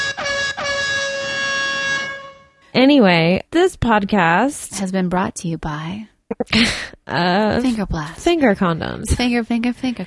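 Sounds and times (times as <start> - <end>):
air horn sound effect blasts: 0.0 - 2.7
speech: 2.8 - 10.0.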